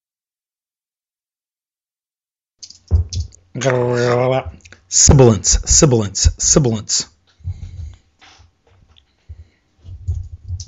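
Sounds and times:
heavy computer keyboard typing: 2.6 - 3.8
speech: 3.6 - 7.1.

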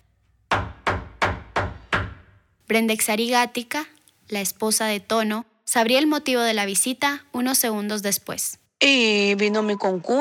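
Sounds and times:
firm knocks on a house door at night in Los Matochos, Guatemala: 0.5 - 2.3
speech: 2.7 - 10.1.

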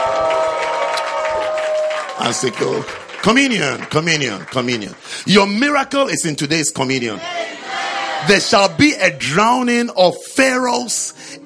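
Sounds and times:
congregation clapping: 0.0 - 7.2
speech: 2.2 - 7.5, 8.2 - 11.4.

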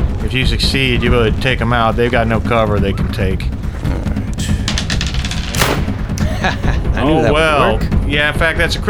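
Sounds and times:
speech: 0.3 - 3.6, 6.4 - 8.8
laughter: 0.4 - 8.0
rifle gunshot sound effect: 5.4 - 6.3.

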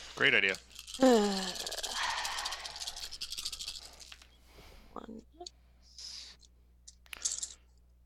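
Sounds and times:
many dice tumbling and rattling: 0.0 - 4.4, 6.9 - 7.6
speech: 0.2 - 1.8.

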